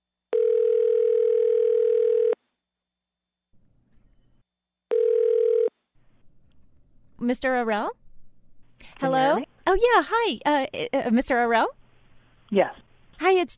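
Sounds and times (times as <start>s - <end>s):
telephone dial tone: 0.4s - 2.4s, 4.9s - 5.7s
speech: 7.3s - 8.0s, 8.8s - 11.8s, 12.5s - 13.5s.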